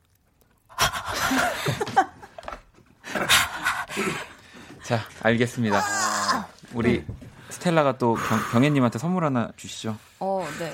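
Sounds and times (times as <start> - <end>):
laughter: 1.0 - 4.3
person huffing exaggerated noisy breaths: 3.1 - 4.8, 8.0 - 8.9, 10.2 - 10.7
speech: 4.9 - 6.0, 6.8 - 10.7.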